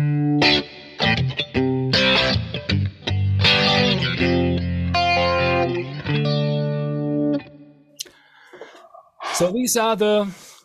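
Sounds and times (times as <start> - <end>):
electric guitar through a Kemper Profiler with slow rotary speaker effect and overdrive: 0.0 - 7.7
speech: 9.4 - 10.4.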